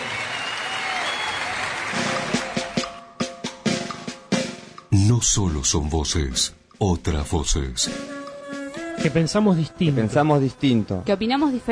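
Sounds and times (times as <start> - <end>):
audience applause at a live Spanish-language event: 0.0 - 3.0
speech: 5.1 - 8.1, 9.0 - 11.7.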